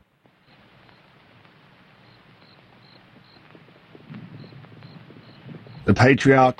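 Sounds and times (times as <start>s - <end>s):
noisy outdoor backdrop: 0.0s - 6.5s
horse hoofbeats of a rider approaching a homestead: 2.0s - 6.5s
speech: 5.8s - 6.5s.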